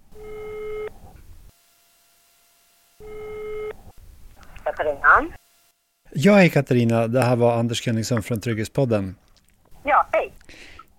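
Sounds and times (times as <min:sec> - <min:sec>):
telephone ringback tone through a phone line: 0:00.2 - 0:00.9, 0:03.0 - 0:03.8
speech: 0:04.8 - 0:05.4, 0:06.2 - 0:09.2.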